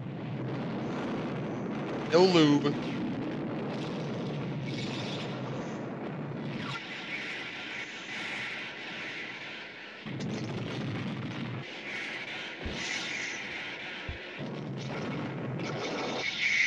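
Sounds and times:
movie pyrotechnic explosions with low rumble and crackling: 0.0s - 16.2s
speech: 2.1s - 3.0s.

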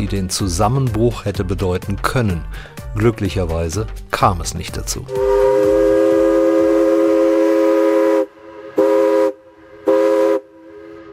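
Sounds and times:
speech: 0.0s - 5.5s
paddle steamer low rhythmic chugging: 0.0s - 8.2s
paddle steamer's steam whistle blasts across the Elbe valley: 5.1s - 11.1s.

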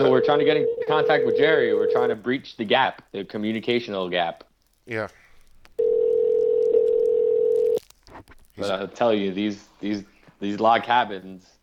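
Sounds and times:
steady electronic telephone tone during a call: 0.0s - 2.1s, 5.8s - 7.8s
speech: 0.0s - 5.2s, 8.6s - 11.6s.

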